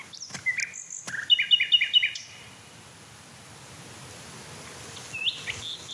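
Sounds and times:
male songbird singing quick repeated chirping notes: 0:00.0 - 0:02.8, 0:04.5 - 0:05.9
soft outdoor noise: 0:00.0 - 0:05.9.

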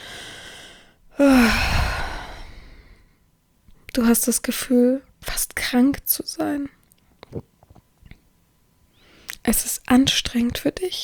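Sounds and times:
heavy breathing: 0:00.0 - 0:03.1
voiced sighing groan on exhale: 0:01.2 - 0:02.7
speech: 0:04.0 - 0:07.5, 0:09.5 - 0:11.0.

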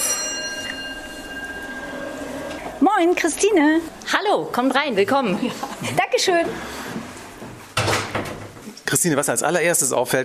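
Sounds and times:
doorbell ringing at a house: 0:00.0 - 0:04.3
steady noise: 0:00.0 - 0:10.2
speech: 0:02.9 - 0:06.8, 0:09.0 - 0:10.2.

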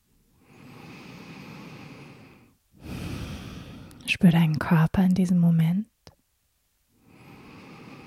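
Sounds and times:
slow relaxed breathing in and out during a guided relaxation: 0:00.3 - 0:04.1, 0:07.0 - 0:08.0
speech: 0:04.1 - 0:05.9.

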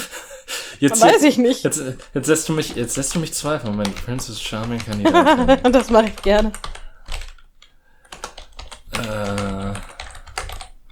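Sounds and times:
laughter: 0:00.0 - 0:06.4
speech: 0:00.8 - 0:06.8
typing on a computer keyboard: 0:02.0 - 0:10.8
voiced hum or sung tone: 0:08.9 - 0:10.1.

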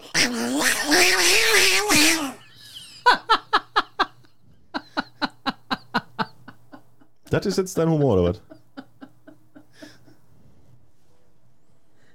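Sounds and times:
person yowling imitating fighting cats: 0:00.0 - 0:02.4
short rhythmic laughter-like bursts: 0:02.1 - 0:10.2
speech: 0:07.3 - 0:08.5.

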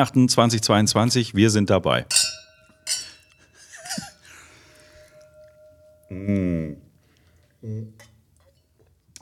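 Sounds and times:
speech: 0:00.0 - 0:02.3
glasses clinking in a toast: 0:02.1 - 0:08.8.

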